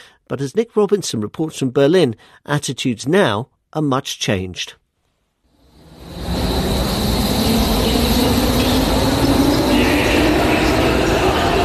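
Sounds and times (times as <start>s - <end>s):
speech: 0.3s - 4.8s
faint high metallic whine: 5.6s - 11.6s
train rumbling through a station: 5.7s - 11.6s.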